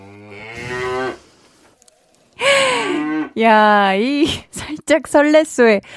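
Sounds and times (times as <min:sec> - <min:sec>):
cow mooing: 0:00.0 - 0:01.2
speech: 0:03.4 - 0:05.9.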